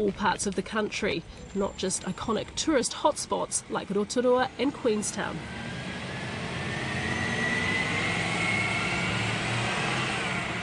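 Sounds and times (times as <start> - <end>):
speech: 0.0 - 5.8
tour bus engine revving as it pulls away from car park: 5.0 - 10.6.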